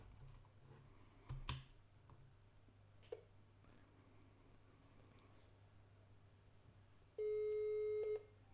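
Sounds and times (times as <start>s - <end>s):
low hum: 0.0s - 8.5s
telephone call ringing tone: 7.2s - 8.3s.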